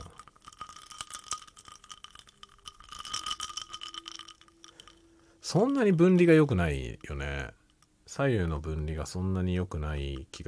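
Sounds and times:
ice cubes clinking in a glass: 0.0 - 6.6
speech: 5.5 - 10.4.

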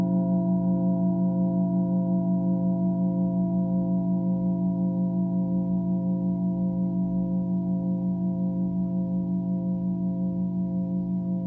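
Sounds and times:
singing bowl humming in a low sustained tone: 0.0 - 11.4.

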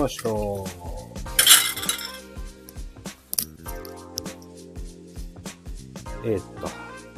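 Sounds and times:
speech: 0.0 - 0.9, 6.2 - 6.8
tableware and plates clinking while washing dishes at a sink: 1.4 - 2.2.

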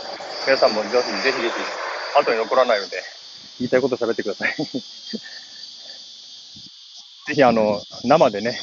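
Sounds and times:
cicadas droning outdoors in summer: 0.0 - 8.6
speech: 0.4 - 5.4, 7.3 - 8.6
person laughing: 4.4 - 5.6.

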